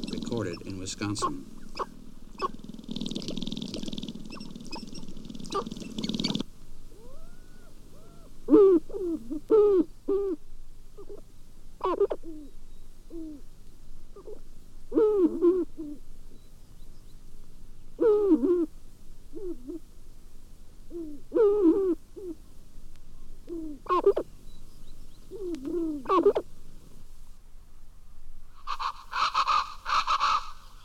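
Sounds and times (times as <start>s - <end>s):
sharp-tailed grouse gobbling and clucking on dancing grounds: 0.0s - 10.4s, 11.0s - 12.5s, 14.1s - 16.0s, 23.5s - 24.3s, 25.3s - 26.5s, 28.6s - 30.8s
sharp-tailed grouse hooting and cooing calls: 0.0s - 10.4s, 11.0s - 13.5s, 14.1s - 17.2s, 17.9s - 18.7s, 19.3s - 19.9s, 20.9s - 22.4s, 23.2s - 26.5s
speech: 0.3s - 1.9s.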